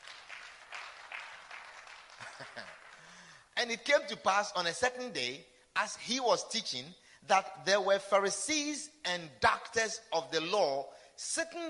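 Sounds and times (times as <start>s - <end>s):
crowd clapping: 0.0s - 3.5s
speech: 2.4s - 2.8s, 3.6s - 11.6s.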